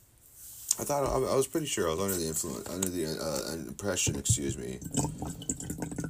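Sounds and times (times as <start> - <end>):
speech: 0.8 - 6.0
drinking water poured into a bong: 2.1 - 6.0.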